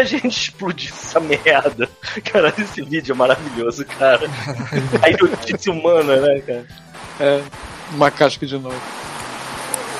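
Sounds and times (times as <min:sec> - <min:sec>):
laughter: 0:00.0 - 0:06.6
speech: 0:00.0 - 0:09.0
steady loud broadband static hiss from leaking audio: 0:02.5 - 0:09.9.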